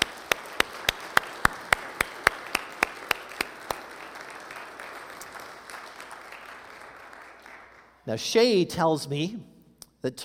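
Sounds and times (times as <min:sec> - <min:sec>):
one clapper beating sharp claps: 0:00.0 - 0:07.9
audience applauding: 0:00.0 - 0:08.0
speech: 0:08.1 - 0:10.2.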